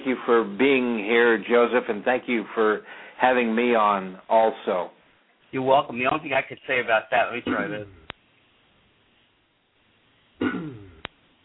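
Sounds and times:
speech: 0.1s - 8.0s
person clearing throat: 7.4s - 8.1s, 10.4s - 11.1s.

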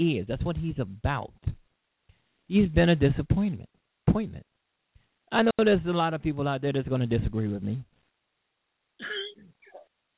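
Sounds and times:
speech: 0.0s - 1.6s, 2.5s - 4.5s, 5.3s - 7.9s
brief quiet cough with throat-clearing quality: 9.0s - 9.9s.

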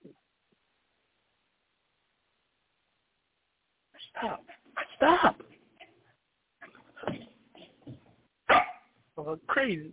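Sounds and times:
speech: 4.2s - 4.5s, 9.3s - 9.9s
dog barking with yips and whimpers: 8.5s - 8.9s.

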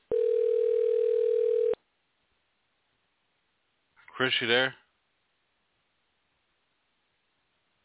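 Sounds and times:
electronic ringback tone on an outgoing phone call: 0.1s - 1.8s
speech: 4.2s - 4.8s.

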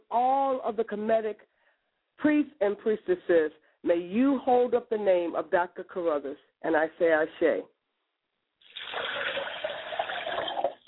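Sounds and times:
speech: 0.1s - 1.6s, 2.2s - 7.7s
liquid poured as a ritual libation to the North: 8.6s - 10.8s.

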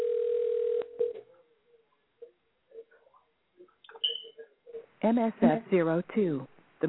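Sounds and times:
telephone dial tone: 0.0s - 1.2s
speech: 5.0s - 6.8s.

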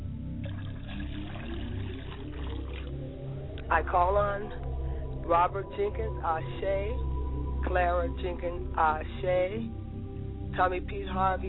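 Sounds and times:
low rumble: 0.0s - 11.4s
liquid poured out as a libation: 0.4s - 3.7s
speech: 3.7s - 4.6s, 5.3s - 9.8s, 10.6s - 11.4s.

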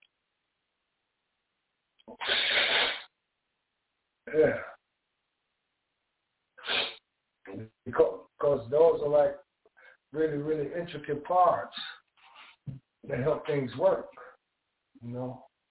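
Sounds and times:
person blowing their nose: 2.1s - 3.2s, 6.6s - 7.0s
speech: 4.3s - 4.7s, 8.6s - 9.4s, 10.1s - 11.8s, 12.7s - 14.2s, 15.0s - 15.5s.

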